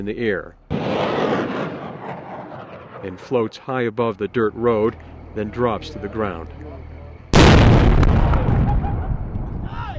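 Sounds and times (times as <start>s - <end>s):
speech: 0.0s - 1.8s, 3.0s - 6.7s
line of explosives detonating to destroy roadside bombs on a dirt road: 0.7s - 3.4s, 7.3s - 9.7s.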